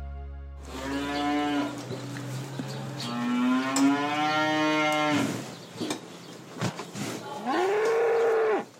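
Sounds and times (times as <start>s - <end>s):
cows mooing at a monastery organic farm in Gnadental near Limburg: 0.6s - 5.5s, 7.4s - 8.7s
farmyard ambience: 0.6s - 8.7s.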